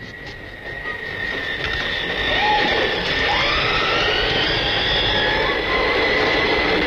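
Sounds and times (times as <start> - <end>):
express train pulling into a station platform: 0.0 - 6.8
high metallic whine and faint squeal of an express train: 0.0 - 6.8.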